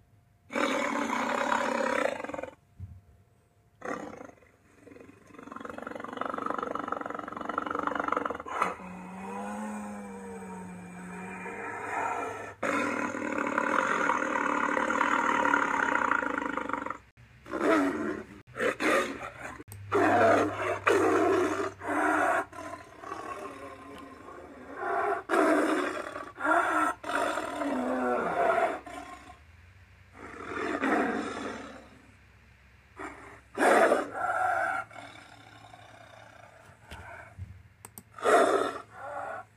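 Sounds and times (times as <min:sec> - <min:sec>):
deep tiger-like Ceratosaurus dinosaur roars: 0:00.5 - 0:02.6, 0:03.8 - 0:29.4, 0:30.1 - 0:32.1, 0:33.0 - 0:37.4, 0:38.2 - 0:39.5.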